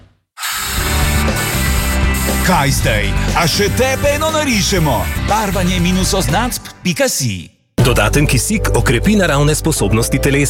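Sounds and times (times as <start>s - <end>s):
power drill with a new bit drilling into concrete: 0.4s - 2.6s
speech: 2.4s - 10.4s.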